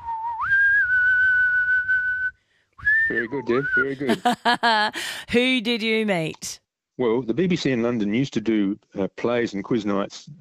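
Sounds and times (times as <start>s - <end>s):
person whistling: 0.0s - 4.1s
speech: 3.1s - 10.4s
laughter: 3.8s - 5.4s.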